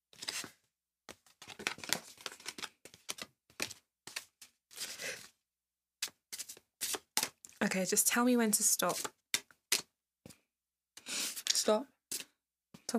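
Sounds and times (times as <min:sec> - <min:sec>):
deck of cards being shuffled with papery riffling: 0:00.2 - 0:00.5, 0:01.2 - 0:05.0, 0:06.0 - 0:07.6, 0:08.8 - 0:09.9
speech: 0:07.7 - 0:09.2, 0:11.7 - 0:12.0.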